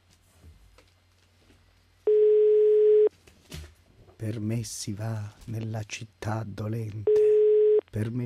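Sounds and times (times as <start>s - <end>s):
telephone line tone: 2.1s - 3.1s, 7.1s - 7.8s
speech: 4.2s - 7.2s, 7.9s - 8.2s.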